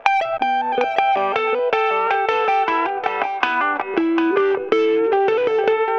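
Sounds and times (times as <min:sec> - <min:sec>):
guitar with delay effect: 0:00.0 - 0:05.9.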